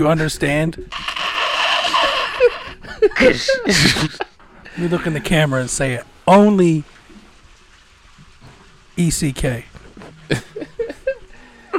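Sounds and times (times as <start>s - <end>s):
speech: 0.0s - 1.1s, 3.1s - 7.0s, 9.0s - 9.7s, 10.3s - 10.6s
water rushing through plumbing upstairs: 0.0s - 11.7s
laughter: 1.8s - 5.3s, 10.0s - 11.7s.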